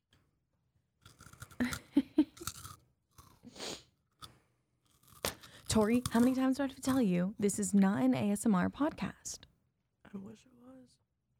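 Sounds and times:
chewing crunchy food: 1.0 - 7.2
speech: 5.8 - 9.5, 10.1 - 10.6.

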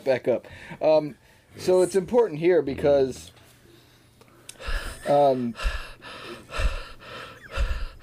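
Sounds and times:
speech: 0.0 - 3.4, 4.7 - 6.6
heavy breathing into a microphone: 3.8 - 8.0.

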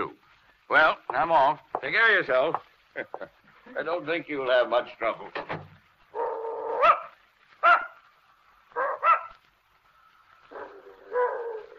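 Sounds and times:
speech: 0.0 - 5.6
old female dog barking, whimpering and yipping: 6.2 - 8.0, 8.8 - 9.4, 10.5 - 11.7.

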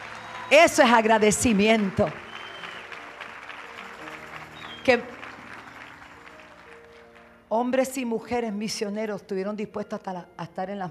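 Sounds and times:
congregation applauding: 0.0 - 7.4
speech: 0.5 - 2.2, 4.8 - 5.1, 7.5 - 10.8.

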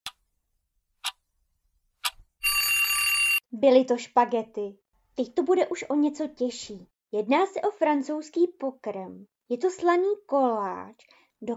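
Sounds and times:
metallic alarm clock bell ringing: 2.4 - 3.4
speech: 3.5 - 11.5.

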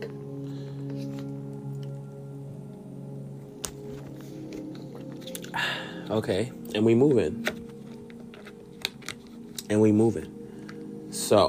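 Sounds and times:
person quietly sipping a drink with slurping and swallowing: 5.0 - 5.7
speech: 5.6 - 7.5, 9.7 - 10.4, 11.3 - 11.4.

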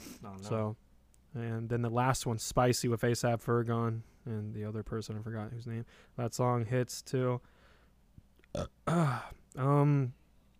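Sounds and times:
speech: 0.2 - 7.6, 8.5 - 10.2
loud croaky burp: 8.5 - 9.3.

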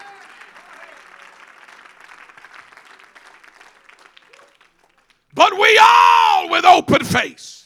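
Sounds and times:
audience clapping: 0.0 - 5.7
speech: 5.4 - 7.6.

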